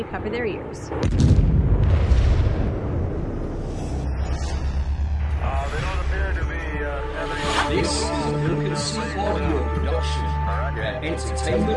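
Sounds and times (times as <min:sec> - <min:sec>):
speech: 0:00.0 - 0:02.3, 0:05.4 - 0:11.7
rumbling explosion sound effect in an audio drama: 0:00.9 - 0:06.5.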